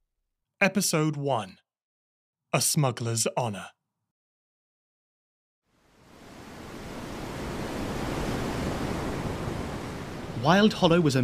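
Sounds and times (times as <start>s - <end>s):
speech: 0.6s - 1.6s, 2.5s - 3.8s, 10.4s - 11.2s
ocean waves and surf: 5.7s - 11.2s.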